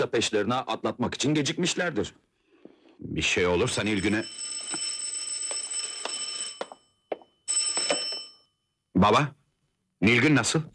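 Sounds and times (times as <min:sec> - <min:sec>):
speech: 0:00.0 - 0:02.2, 0:03.0 - 0:04.9, 0:09.0 - 0:09.4, 0:10.0 - 0:10.7
telephone ringing with shrill metallic bell trill: 0:03.6 - 0:08.7.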